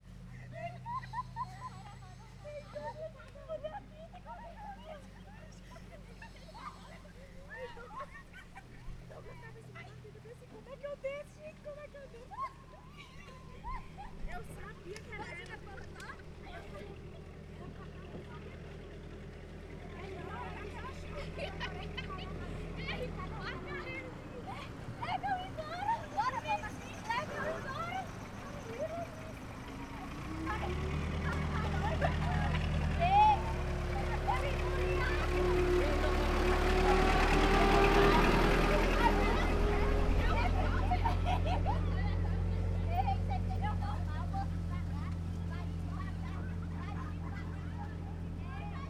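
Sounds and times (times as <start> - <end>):
children playing in the street: 0.0 - 48.8
voices of a crowd: 0.0 - 48.8
laughter: 0.3 - 10.1, 12.2 - 16.9, 20.1 - 28.0, 30.5 - 44.0.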